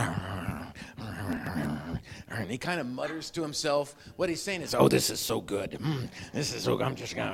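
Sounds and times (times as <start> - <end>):
voice imitating a dog growling while chewing a bone: 0.0 - 3.2
speech: 2.4 - 7.3.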